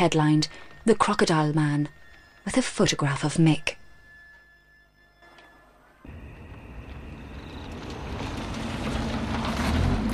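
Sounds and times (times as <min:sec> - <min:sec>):
speech: 0:00.0 - 0:03.8
car engine and tyre rumble driving up to a mansion at night: 0:06.1 - 0:10.1.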